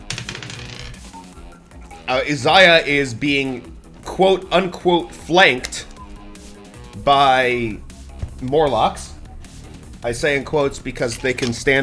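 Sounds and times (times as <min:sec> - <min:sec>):
dice clattering as they are taken out and handled: 0:00.0 - 0:01.1
speech: 0:02.1 - 0:05.9, 0:07.0 - 0:07.8, 0:08.4 - 0:09.1, 0:10.0 - 0:11.8.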